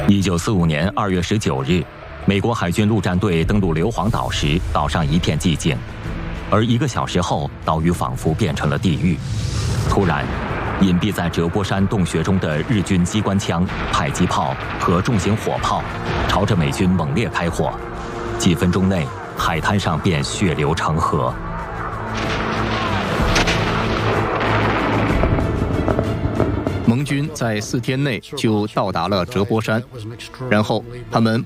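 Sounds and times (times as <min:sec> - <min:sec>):
speech: 0:00.1 - 0:21.5, 0:26.9 - 0:31.4
heavy artillery firing from cave positions onto a beach in battle: 0:08.1 - 0:20.4, 0:21.7 - 0:27.9
mortars firing from cave positions in battle: 0:09.9 - 0:17.5, 0:22.1 - 0:27.4.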